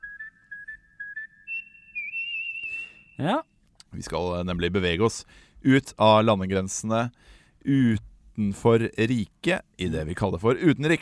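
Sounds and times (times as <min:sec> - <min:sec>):
person whistling a short tune: 0:00.0 - 0:03.4
speech: 0:03.2 - 0:11.0.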